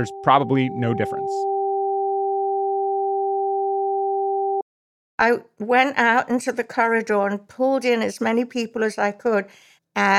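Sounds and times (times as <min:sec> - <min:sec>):
speech: 0:00.0 - 0:01.5, 0:05.2 - 0:10.1
alternating high and low electronic sine tones: 0:00.0 - 0:04.6.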